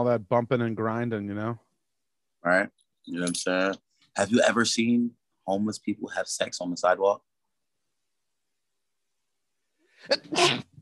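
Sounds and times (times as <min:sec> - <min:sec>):
speech: 0:00.0 - 0:01.7, 0:02.4 - 0:07.3, 0:10.0 - 0:10.7
person sneezing: 0:10.0 - 0:10.8.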